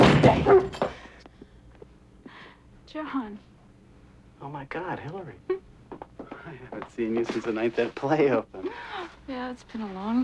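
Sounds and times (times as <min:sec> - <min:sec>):
dog yipping, barking and whimpering while being fended off: 0:00.3 - 0:00.8
speech: 0:03.0 - 0:03.5, 0:04.4 - 0:10.2.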